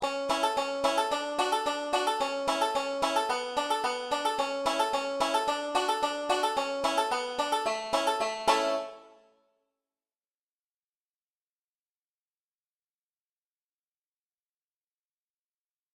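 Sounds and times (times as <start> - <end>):
beginner 5-string banjo solo in the key of A: 0.0 - 9.3.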